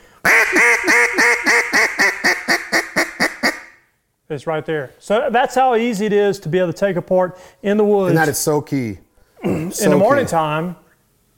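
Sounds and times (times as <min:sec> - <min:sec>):
duck call blown after reed adjustment: 0:00.2 - 0:03.8
speech: 0:04.3 - 0:09.0, 0:09.7 - 0:10.8.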